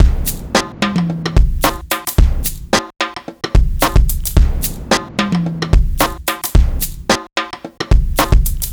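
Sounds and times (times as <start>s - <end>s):
fast-tempo pop rock drums: 0.0s - 2.9s, 3.5s - 5.1s, 5.7s - 7.2s, 7.9s - 8.7s.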